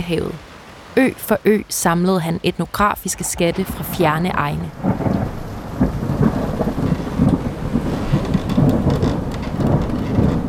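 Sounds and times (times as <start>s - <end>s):
speech: 0.0s - 5.4s
heavy rain pouring: 0.0s - 10.4s
deep rumbling thunder: 4.7s - 10.4s.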